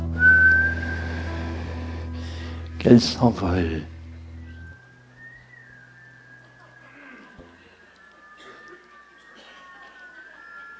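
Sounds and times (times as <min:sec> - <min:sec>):
low continuous drone: 0:00.0 - 0:10.7
whistle being blown: 0:00.1 - 0:01.4, 0:04.5 - 0:07.4
speech: 0:02.8 - 0:03.9.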